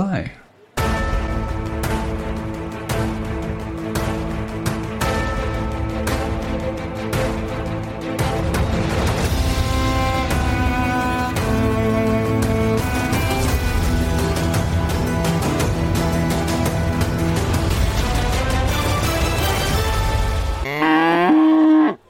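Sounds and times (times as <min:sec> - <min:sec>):
speech: 0:00.2 - 0:00.4
busy loud music: 0:00.6 - 0:21.4
cow mooing: 0:20.6 - 0:22.0.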